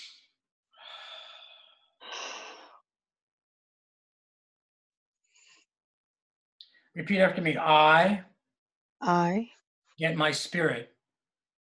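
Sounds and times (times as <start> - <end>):
slow breathing in through the nose and out through the mouth: 0.8 - 2.8
speech: 7.0 - 8.3, 9.0 - 10.9.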